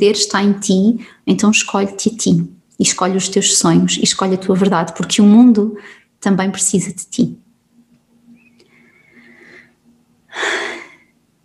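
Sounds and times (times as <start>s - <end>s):
speech: 0.0s - 7.4s, 10.4s - 10.7s
quiet hum: 0.0s - 11.4s
deep breath drawn in sharply: 8.7s - 11.1s.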